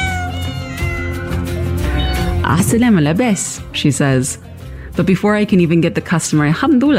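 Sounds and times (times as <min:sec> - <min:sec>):
cat meowing: 0:00.0 - 0:02.7
speech: 0:02.5 - 0:06.9.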